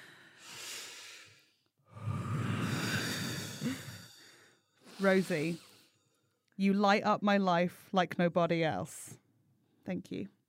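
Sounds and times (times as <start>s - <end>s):
people breathing together slowly and deeply: 0.0s - 6.3s
speech: 5.0s - 5.7s, 6.6s - 9.2s, 9.8s - 10.4s.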